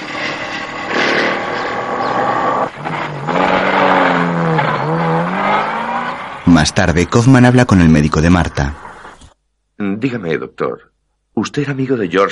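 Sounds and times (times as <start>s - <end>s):
car engine revving as the car drives off: 0.0s - 7.4s
speech: 6.6s - 8.8s, 9.8s - 12.3s.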